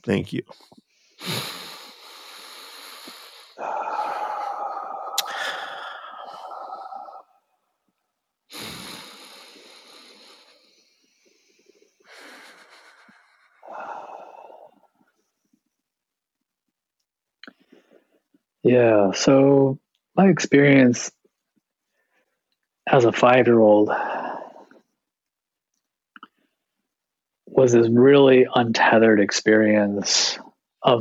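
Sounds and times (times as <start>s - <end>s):
speech: 0.0s - 1.6s, 18.7s - 21.2s, 22.9s - 24.1s, 27.6s - 31.0s
slow deep breaths: 0.5s - 7.6s, 8.5s - 15.6s, 17.5s - 18.4s, 21.8s - 22.5s, 23.9s - 25.0s.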